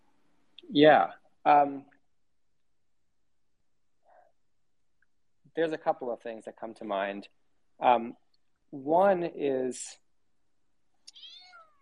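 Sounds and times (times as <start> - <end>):
speech: 0.7 - 1.9, 5.6 - 10.0
drawn-out cat meow: 11.1 - 11.8.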